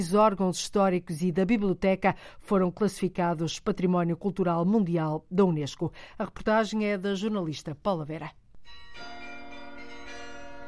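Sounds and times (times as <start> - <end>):
speech: 0.0 - 9.2
carillon bells of the National Palace of Mafra in Portugal ringing: 8.6 - 10.6.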